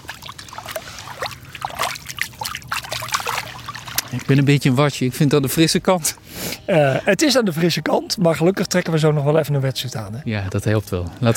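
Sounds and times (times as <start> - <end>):
hand splashing through shallow spring water beside a river: 0.0 - 4.3
spring water trickling: 0.0 - 5.4, 8.9 - 11.3
speech: 4.1 - 11.3.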